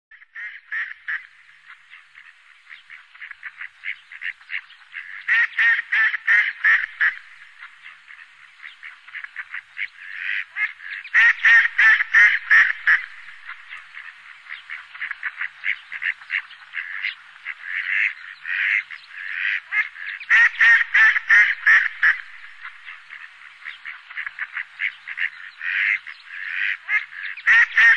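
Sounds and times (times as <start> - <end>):
Anas platyrhynchos at sea in Sakhalin and the Kurils: 0.2 - 27.9.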